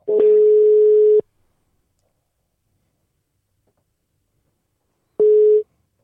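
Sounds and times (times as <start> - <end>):
telephone ringback tone from an outgoing call to a municipality service desk: 0.1 - 1.2, 5.2 - 5.6.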